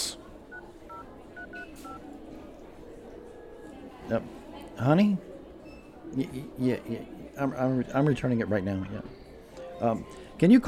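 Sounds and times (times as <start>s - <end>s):
faint murmur: 0.0s - 10.6s
touch-tone beeps of a phone number being dialed: 0.5s - 2.0s
speech: 4.1s - 5.3s, 6.1s - 9.2s, 9.8s - 10.6s.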